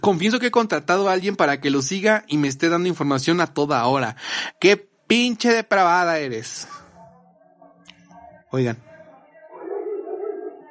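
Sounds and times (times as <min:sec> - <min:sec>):
speech: 0:00.0 - 0:06.8, 0:08.5 - 0:08.9
dog howling: 0:09.5 - 0:10.7.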